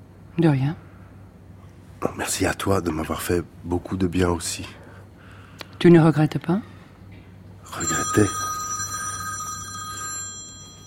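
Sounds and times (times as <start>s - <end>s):
speech: 0.4s - 0.8s, 2.0s - 4.8s, 5.8s - 6.7s, 7.7s - 8.4s
telephone bell ringing: 7.7s - 10.8s.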